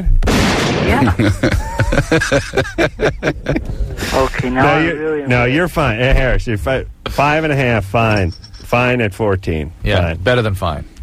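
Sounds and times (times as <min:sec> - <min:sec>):
gunshot sound effects: 0:00.1 - 0:01.2
speech: 0:00.9 - 0:10.9
laughter: 0:01.0 - 0:05.0.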